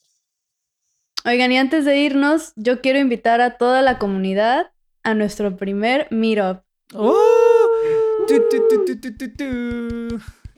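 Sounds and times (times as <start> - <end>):
speech: 1.2 - 7.3, 8.2 - 10.4
voice imitating an air horn: 7.0 - 10.2.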